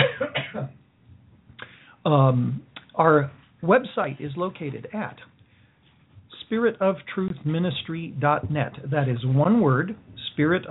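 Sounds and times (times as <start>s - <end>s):
man coughing: 0.0s - 0.8s
speech: 2.0s - 5.3s, 6.5s - 10.7s.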